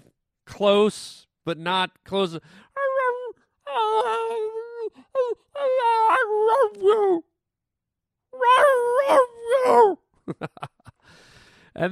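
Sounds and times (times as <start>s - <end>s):
speech: 0.6s - 2.7s, 8.4s - 10.7s, 11.8s - 11.9s
dog howling and moaning: 2.7s - 7.3s, 8.4s - 10.0s
laughter: 10.2s - 11.0s.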